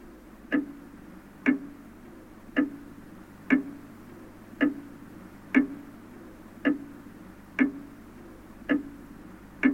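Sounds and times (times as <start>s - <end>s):
low hum: 0.0s - 9.7s
clock ticking: 0.4s - 1.9s, 2.5s - 3.8s, 4.5s - 6.0s, 6.6s - 8.0s, 8.6s - 9.7s.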